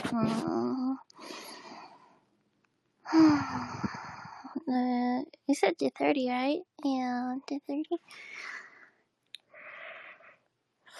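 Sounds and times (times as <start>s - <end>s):
speech: 0.1s - 0.6s, 5.5s - 8.6s
breathing: 1.2s - 2.3s, 3.1s - 4.6s, 8.1s - 10.9s
person yawning: 3.1s - 4.5s.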